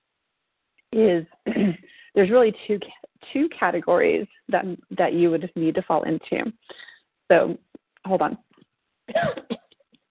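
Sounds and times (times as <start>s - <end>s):
speech: 0.9s - 8.4s
person coughing harshly: 1.5s - 1.9s, 9.1s - 9.6s.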